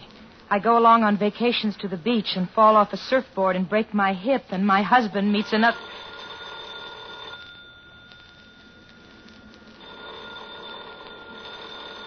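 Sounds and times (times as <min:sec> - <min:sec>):
speech: 0:00.5 - 0:06.0
telephone ringing with an electronic trill: 0:05.3 - 0:12.0.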